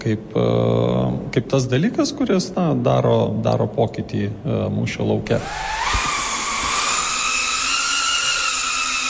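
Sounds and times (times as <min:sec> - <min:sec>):
speech: 0:00.0 - 0:06.0
flying drone buzzing overhead: 0:05.4 - 0:09.0.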